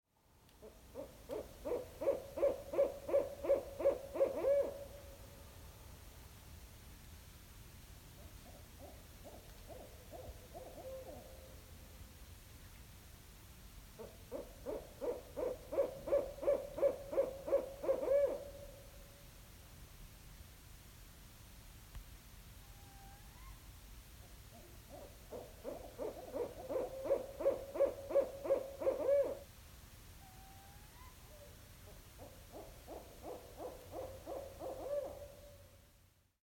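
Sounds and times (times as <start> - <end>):
barred owl family calling: 0.6 - 4.9, 8.4 - 11.3, 14.0 - 18.6, 22.7 - 23.6, 24.5 - 29.4, 30.2 - 35.6.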